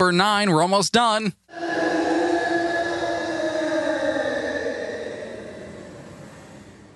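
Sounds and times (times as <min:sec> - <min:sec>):
speech: 0:00.0 - 0:01.7
tennis player screaming while reaching for the ball: 0:01.5 - 0:06.2.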